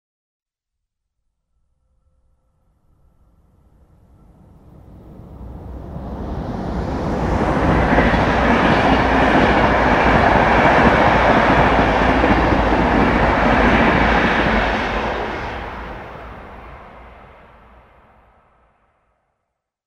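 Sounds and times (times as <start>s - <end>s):
passenger train passing on track without noise barriers: 3.5s - 19.0s.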